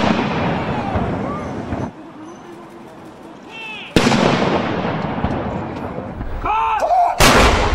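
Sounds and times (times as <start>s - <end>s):
heavy ceremonial artillery salute volleys booming outdoors with rolling echo: 0.0s - 1.9s, 3.5s - 7.7s
faint crowd noise: 0.0s - 7.7s.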